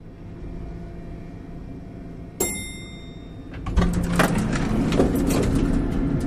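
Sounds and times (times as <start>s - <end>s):
elevator bell ding: 2.4s - 6.1s.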